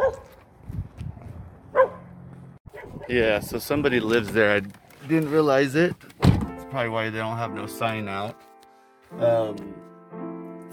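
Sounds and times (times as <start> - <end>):
dog barking behind a house: 0.0 - 0.3, 1.7 - 2.1, 2.7 - 3.1
speech: 3.1 - 6.1, 6.7 - 8.5, 9.1 - 9.8.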